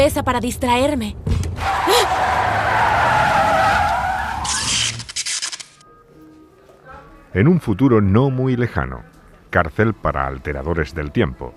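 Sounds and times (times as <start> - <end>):
speech: 0.0 - 2.4, 7.3 - 11.5
car skidding with tire screech: 1.6 - 5.1.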